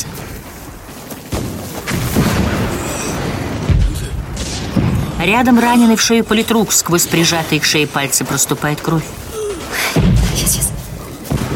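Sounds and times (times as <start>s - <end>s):
continuous rumbling noisy battlefield background: 0.0s - 11.5s
explosions on a film battlefield: 1.3s - 6.0s, 9.6s - 11.5s
speech: 5.2s - 10.6s.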